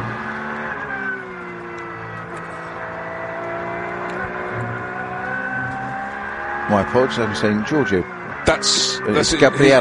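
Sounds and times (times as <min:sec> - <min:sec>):
Porsche race car engine droning on a circuit: 0:00.0 - 0:09.8
speech: 0:06.7 - 0:09.8.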